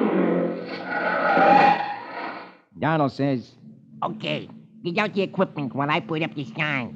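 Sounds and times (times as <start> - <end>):
car tires squealing skidding to a stop on a dusty road: 0.0 - 2.6
speech: 2.8 - 6.9.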